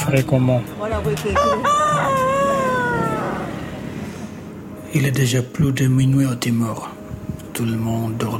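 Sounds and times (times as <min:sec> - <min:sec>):
speech: 0:00.1 - 0:03.1, 0:04.9 - 0:07.0, 0:07.6 - 0:08.3
rooster crowing by a cockfighting arena in East Timor: 0:01.3 - 0:04.0.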